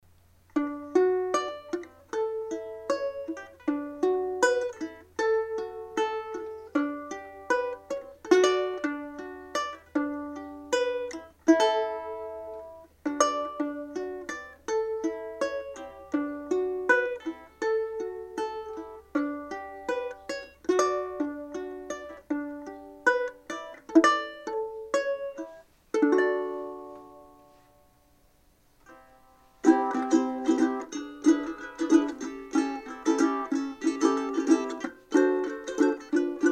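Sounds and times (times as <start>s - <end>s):
antique tenor resonator ukulele playing: 0.4s - 28.1s, 28.8s - 36.4s.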